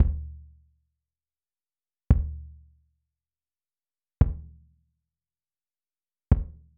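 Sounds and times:
fife and drum kick: 0.0 - 0.4, 2.1 - 2.6, 4.2 - 4.6, 6.3 - 6.7.

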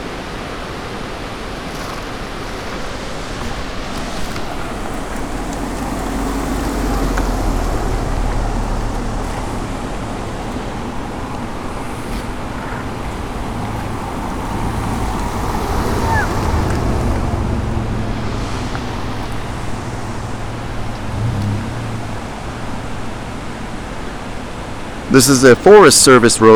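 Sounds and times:
river water rushing below a railroad bridge: 0.1 - 26.5
speech: 25.1 - 26.5.

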